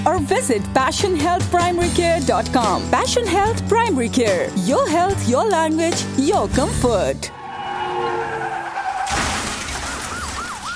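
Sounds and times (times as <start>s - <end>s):
speech: 0.1s - 7.4s
car tires screeching before an accident: 7.2s - 10.2s
wailing rising-and-falling siren: 7.2s - 10.7s
car crashing impact: 8.9s - 10.7s.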